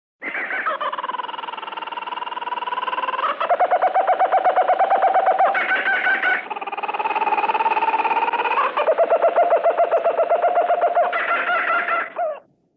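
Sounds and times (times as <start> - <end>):
kookaburra calling: 0.2 - 12.5.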